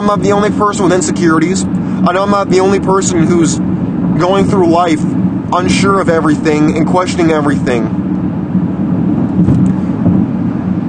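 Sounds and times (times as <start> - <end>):
speech: 0.0 - 8.1
road noise inside a moving car driving by the ocean near Santa Barbara and Ventura: 0.0 - 10.8.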